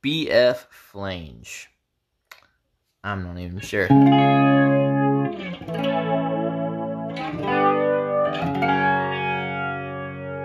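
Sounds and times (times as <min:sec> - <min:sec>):
speech: 0:00.0 - 0:01.7, 0:03.0 - 0:04.6
electric guitar strummed through a chorus effect pedal: 0:03.9 - 0:10.4.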